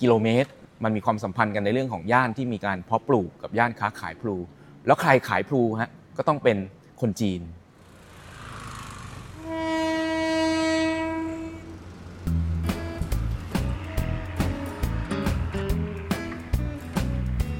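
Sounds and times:
speech: 0:00.0 - 0:07.6
train rumbling past on a railway through a community: 0:07.8 - 0:17.4
train horn blast: 0:09.0 - 0:16.9.

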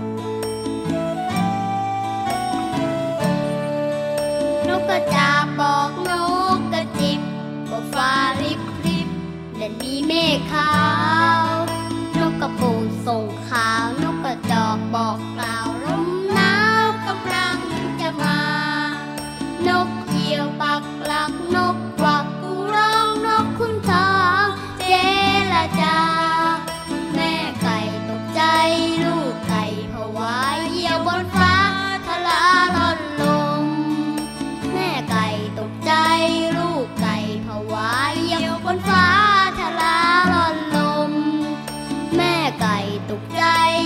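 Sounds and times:
cheerful cute children's song with bouncing melody and repeating bass line: 0:00.0 - 0:43.8.

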